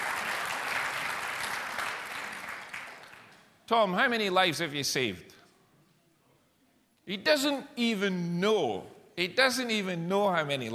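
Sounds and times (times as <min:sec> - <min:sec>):
church audience applauding rescuers: 0:00.0 - 0:03.5
speech: 0:03.7 - 0:05.3, 0:07.1 - 0:10.7.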